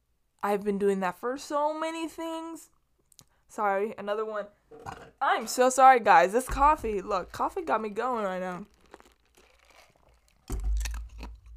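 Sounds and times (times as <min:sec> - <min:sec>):
speech: 0:00.4 - 0:02.8, 0:03.5 - 0:08.7
person's teeth crunching ice cubes: 0:07.0 - 0:11.5.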